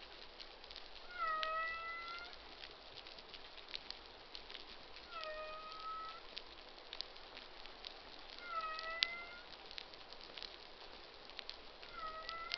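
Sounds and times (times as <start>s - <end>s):
crackling background noise: 0.0s - 12.5s
humpback whale short harmonic social cries: 1.1s - 2.4s, 5.1s - 6.3s, 8.4s - 9.5s, 11.9s - 12.5s.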